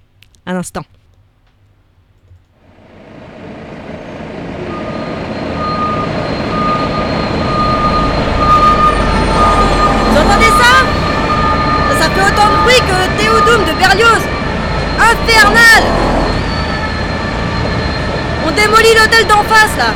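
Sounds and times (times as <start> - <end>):
speech: 0.5 - 1.0
dense city traffic rumble of heavy vehicles: 2.6 - 19.9
shrill sustained whines and squeals: 6.0 - 19.9.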